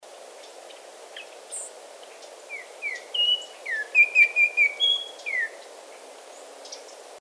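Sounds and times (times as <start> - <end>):
Altamira Oriole calling: 2.5 - 5.7.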